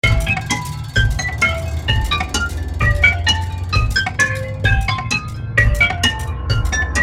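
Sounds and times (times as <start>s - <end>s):
tonal percussion effect: 0.0s - 6.9s.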